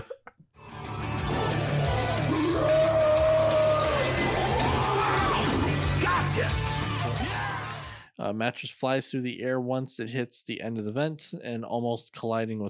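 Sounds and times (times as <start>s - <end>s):
creature letting out a drawn-out wavering scream: 1.2s - 8.0s
speech: 8.3s - 12.6s.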